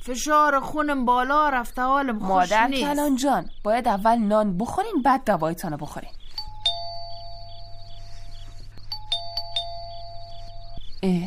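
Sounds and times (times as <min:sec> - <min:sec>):
speech: 0:00.0 - 0:06.2, 0:11.0 - 0:11.2
electronic doorbell chime ringing at night: 0:06.4 - 0:10.9.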